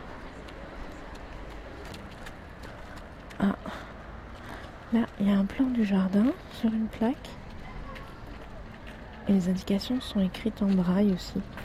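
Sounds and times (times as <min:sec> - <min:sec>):
cars passing: 0:00.0 - 0:11.6
street traffic beside a garden: 0:00.0 - 0:11.6
speech: 0:03.4 - 0:03.8, 0:04.9 - 0:07.4, 0:09.3 - 0:11.6.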